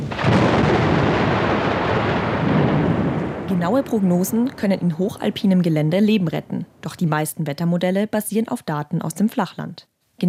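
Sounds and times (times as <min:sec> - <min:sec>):
heavy continuous rumble of thunder: 0:00.0 - 0:07.6
speech: 0:03.6 - 0:10.2.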